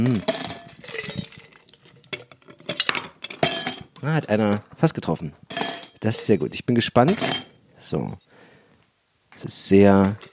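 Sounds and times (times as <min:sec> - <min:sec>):
speech: 0:00.0 - 0:00.3, 0:04.0 - 0:05.4, 0:06.0 - 0:08.3, 0:09.4 - 0:10.3
ice cubes clinking and rattling into wine glasses with glass straws: 0:00.0 - 0:04.0, 0:05.5 - 0:06.4.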